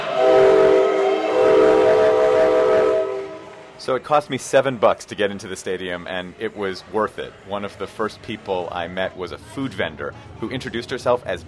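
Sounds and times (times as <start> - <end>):
train rumbling past on railroad tracks near a stadium: 0.1 - 3.8
speech: 3.9 - 11.4.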